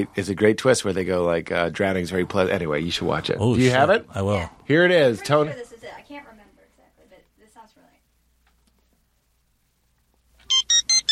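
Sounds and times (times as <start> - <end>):
speech: 0.0 - 6.3
loud electronic phone ringtone: 10.5 - 11.1.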